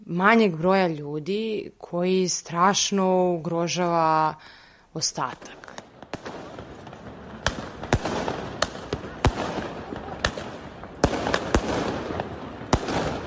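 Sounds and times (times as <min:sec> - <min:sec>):
speech: 0:00.1 - 0:05.8
continuous rumbling crackle of firework explosions: 0:05.7 - 0:13.2
firework and firecracker bangs: 0:05.7 - 0:13.2.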